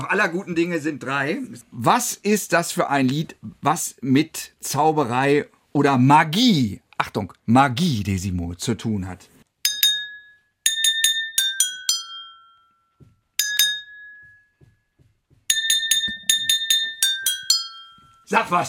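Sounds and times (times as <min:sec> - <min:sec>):
speech: 0:00.0 - 0:09.3, 0:18.3 - 0:18.6
drinking glasses tapped to play a short melody: 0:09.6 - 0:18.3.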